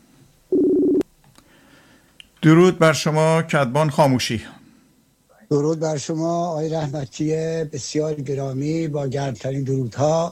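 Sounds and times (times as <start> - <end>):
telephone ringback tone on an outgoing call: 0.5 - 1.0
speech: 2.4 - 4.6, 5.5 - 10.3.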